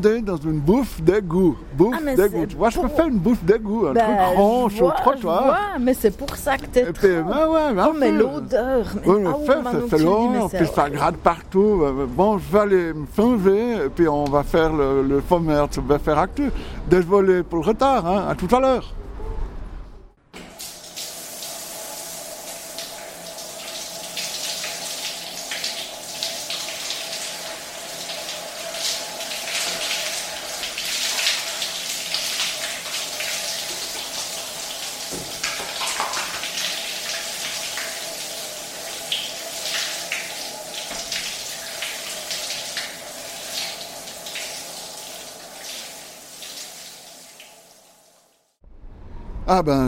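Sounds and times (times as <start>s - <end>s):
speech: 0.0s - 19.0s, 49.5s - 49.8s
faint constant hum: 0.0s - 48.2s
shower water running: 7.0s - 11.2s, 20.4s - 48.6s.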